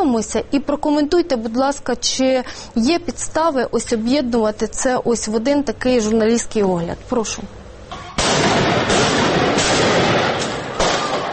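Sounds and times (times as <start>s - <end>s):
speech: 0.0s - 7.6s
loud harsh automatic rifle fire: 8.2s - 11.3s.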